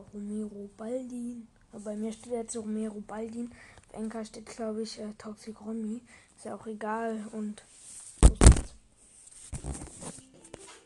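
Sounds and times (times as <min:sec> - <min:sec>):
speech: 0:00.0 - 0:08.4, 0:09.5 - 0:10.2
mobile phone dropping and thudding: 0:08.2 - 0:08.8.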